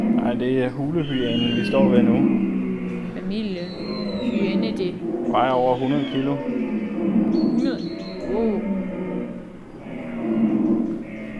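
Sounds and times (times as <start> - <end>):
giant deer and woolly rhino bellowing roars: 0.0 - 11.3
speech: 0.4 - 8.8.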